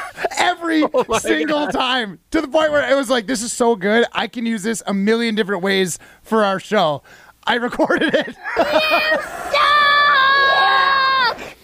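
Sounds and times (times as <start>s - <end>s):
laughter: 0.0s - 1.9s, 7.8s - 9.7s
speech: 0.7s - 9.8s
arena crowd jeering at a basketball game during free throws: 8.5s - 11.5s.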